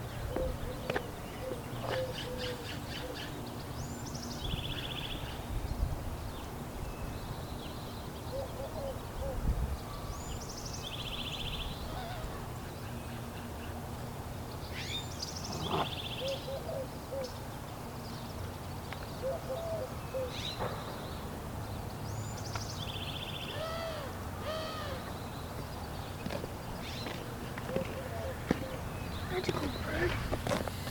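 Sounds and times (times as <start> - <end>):
several birds chirping and singing outdoors: 0.0 - 13.8, 14.5 - 30.8
steady hum: 0.0 - 30.8.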